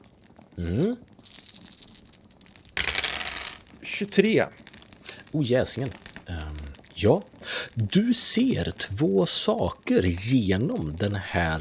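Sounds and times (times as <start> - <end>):
speech: 0.6 - 1.1, 3.9 - 4.6, 5.3 - 6.4, 7.0 - 11.5
dice rattling and tumbling across a hard surface: 1.2 - 3.9.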